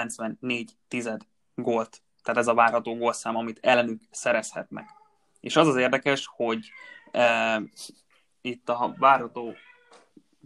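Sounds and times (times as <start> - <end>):
speech: 0.0 - 9.7
cat low chirping bursts: 4.8 - 5.2
cat meowing: 4.8 - 5.2, 6.6 - 7.7, 8.8 - 10.1.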